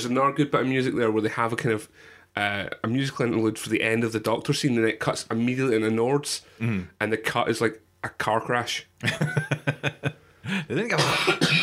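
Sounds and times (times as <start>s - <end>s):
speech: 0.0s - 11.6s
rasping voiced throat sounds: 6.6s - 6.9s
laughter: 9.0s - 10.6s
person with bronchitis coughing: 11.0s - 11.6s.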